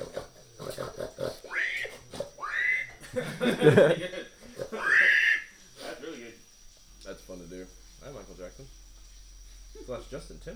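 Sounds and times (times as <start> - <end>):
person imitating pig grunts and squealing oinks: 0.0 - 3.0, 4.6 - 5.5
laughter: 2.8 - 5.3
speech: 3.2 - 4.2, 9.9 - 10.5.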